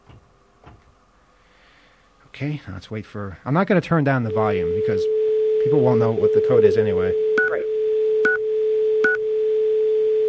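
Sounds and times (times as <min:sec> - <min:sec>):
speech: 0:02.4 - 0:07.3
steady continuous electronic tone: 0:04.1 - 0:10.2
touch-tone telephone dialing beeps: 0:07.4 - 0:07.6, 0:08.2 - 0:08.4, 0:09.0 - 0:09.2.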